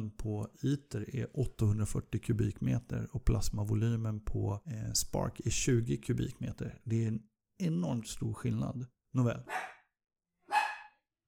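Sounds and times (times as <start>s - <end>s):
speech: 0.1s - 9.8s
dog barking: 9.5s - 9.9s, 10.5s - 11.0s.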